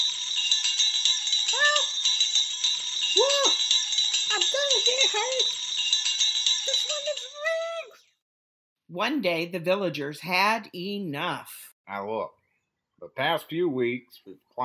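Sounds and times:
hand bell ringing: 0.0 - 8.0
speech: 4.6 - 5.6, 6.7 - 8.0, 8.9 - 12.4, 13.0 - 14.6.

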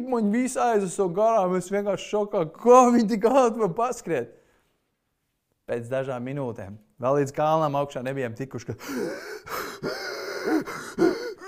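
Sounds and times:
speech: 0.0 - 4.4, 5.7 - 11.1
voice imitating heavy labored breathing of exhausted runners: 8.8 - 11.4.

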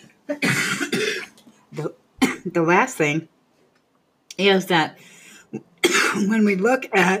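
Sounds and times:
speech: 0.3 - 0.6, 2.6 - 3.4, 4.4 - 7.1
person coughing: 0.3 - 1.4, 5.8 - 7.1.

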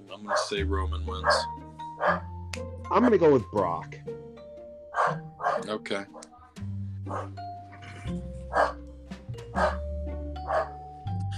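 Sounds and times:
speech: 0.1 - 4.2, 5.0 - 6.2, 7.1 - 7.4, 8.1 - 8.8, 9.6 - 9.8
corgi barking: 0.3 - 0.6, 1.2 - 2.3, 5.0 - 6.3, 7.1 - 7.4, 8.5 - 8.8, 9.6 - 9.8, 10.4 - 10.8.

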